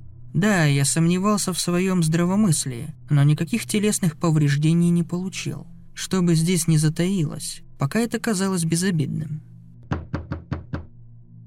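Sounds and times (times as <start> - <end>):
low steady hum: 0.0 - 9.9
speech: 0.4 - 9.5
loud sharp knocking on a door: 9.8 - 11.0.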